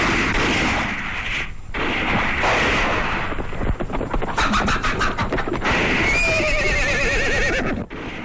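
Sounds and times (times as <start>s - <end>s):
rapid string of gunshots: 0.0s - 6.6s, 7.8s - 8.2s
horse whinnying loudly: 6.0s - 7.8s.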